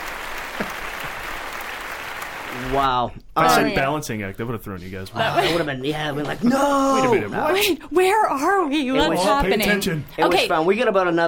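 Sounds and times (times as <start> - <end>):
studio audience applause after a correct quiz answer: 0.0 - 2.9
speech: 2.5 - 11.2.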